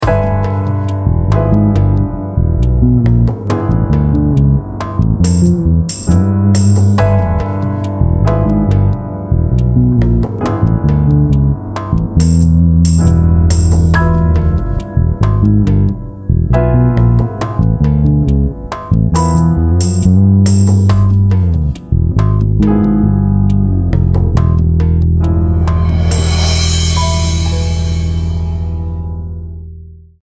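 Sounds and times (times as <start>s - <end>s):
symmetric diminished half whole bass groove: 0.0s - 29.6s.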